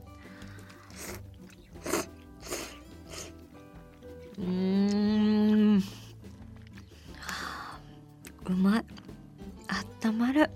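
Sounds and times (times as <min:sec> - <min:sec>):
slurping and chewing of curry udon noodles in thick starchy curry broth: 0:00.4 - 0:09.1
speech: 0:10.1 - 0:10.5.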